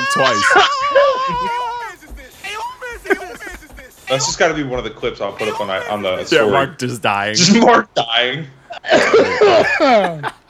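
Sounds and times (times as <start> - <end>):
wheezing: 0.0 - 4.4, 5.3 - 6.6
laughter: 0.0 - 7.8, 8.7 - 10.4
speech: 0.2 - 1.6, 4.1 - 10.4
man coughing and choking: 1.3 - 4.0.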